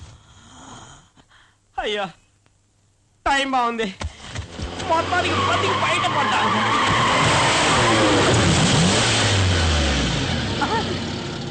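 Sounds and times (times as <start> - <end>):
speech: 1.8 - 2.2, 3.3 - 4.1, 4.9 - 7.3
car tyres skidding to a stop: 4.2 - 11.4
car engine slowing with dropping pitch: 4.4 - 11.4.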